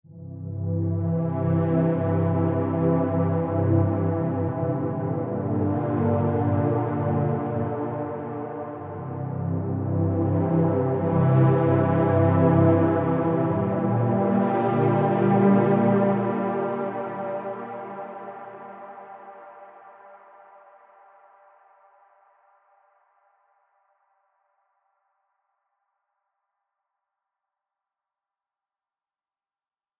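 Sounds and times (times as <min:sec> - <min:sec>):
wet synth pad: 0:00.1 - 0:20.5.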